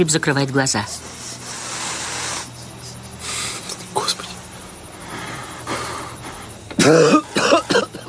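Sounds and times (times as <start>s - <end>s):
speech: 0.0s - 1.3s, 6.9s - 7.2s
faint steady hiss: 0.0s - 8.0s
person fake coughing: 6.7s - 8.0s.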